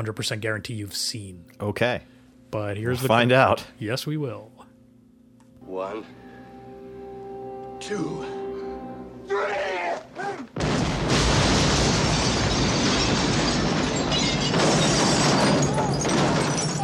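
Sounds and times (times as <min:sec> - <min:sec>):
speech: 0:00.0 - 0:04.6, 0:05.7 - 0:06.2, 0:07.8 - 0:08.4
series of big explosions with deep rumbling blasts: 0:10.6 - 0:16.6.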